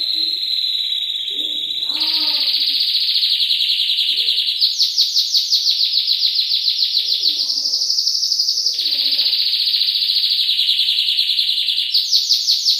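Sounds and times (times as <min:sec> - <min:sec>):
soft low chirps: 0:00.0 - 0:02.9
canary song with fast rolling trill: 0:00.0 - 0:12.7.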